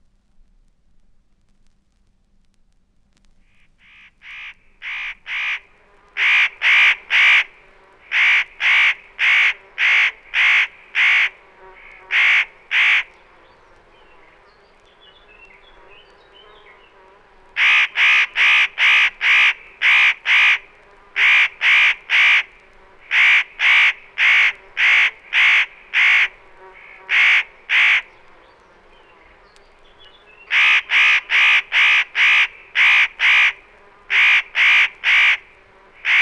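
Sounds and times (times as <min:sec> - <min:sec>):
common raven giving harsh deep croaking calls: 0:03.5 - 0:13.2, 0:17.6 - 0:28.2, 0:30.4 - 0:36.2.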